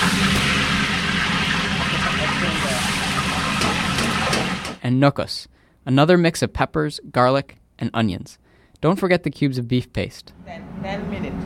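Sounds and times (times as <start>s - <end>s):
hot water poured into a large cooking pot with peanut oil, fish and onions: 0.0s - 4.8s
speech: 5.0s - 11.4s.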